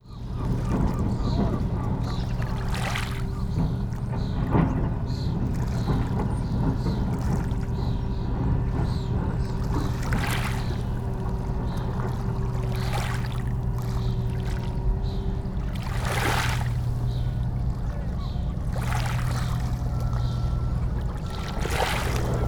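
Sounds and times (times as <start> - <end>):
sea: 0.0 - 22.4
seagulls: 0.0 - 22.4.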